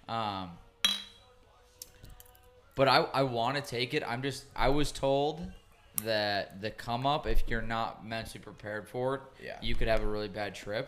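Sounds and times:
speech: 0.1s - 0.6s, 2.8s - 10.8s
glass tap: 0.8s - 1.2s
glasses clinking in a toast: 0.8s - 1.3s.

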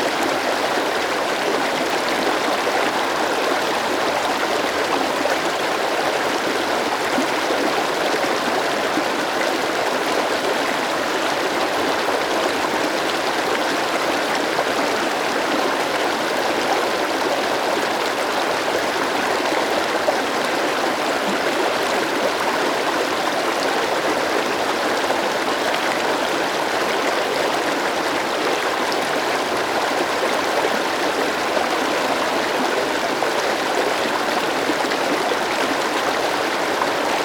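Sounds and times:
mountain river bubbling and rushing over rocks: 0.0s - 37.2s.

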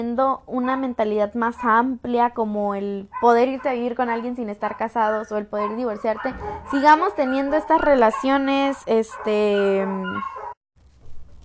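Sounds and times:
speech: 0.0s - 10.4s
dogs barking: 0.6s - 1.9s, 3.1s - 10.6s.

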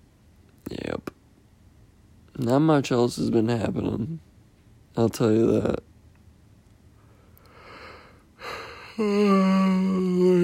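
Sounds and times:
speech: 2.4s - 4.3s, 5.0s - 5.9s, 9.0s - 9.8s
person yawning: 8.4s - 10.4s.

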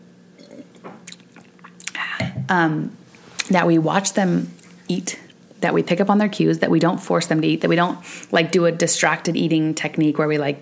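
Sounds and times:
person sipping a drink: 0.4s - 2.5s
person swallowing: 0.4s - 2.6s
speech: 2.5s - 10.6s.

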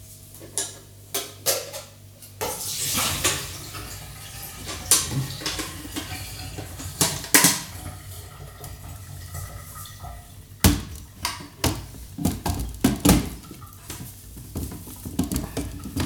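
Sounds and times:
dishware clinking: 2.4s - 14.0s
dishes clattering: 2.4s - 16.0s
water being poured out into a sink: 2.4s - 16.0s.

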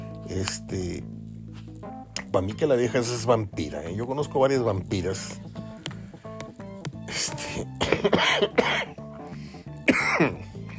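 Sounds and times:
speech: 0.3s - 1.2s, 2.3s - 5.5s, 7.2s - 9.0s
person coughing harshly: 7.8s - 9.0s, 9.8s - 10.6s.

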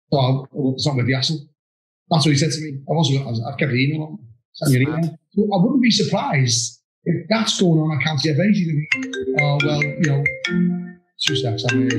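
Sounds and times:
speech: 0.1s - 1.5s, 2.1s - 11.9s
mobile phone ringing with a bright electronic melody: 8.9s - 11.9s.

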